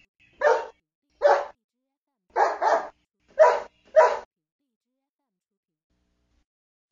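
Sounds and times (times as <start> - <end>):
dog barking: 0.4 - 1.6, 2.3 - 4.3.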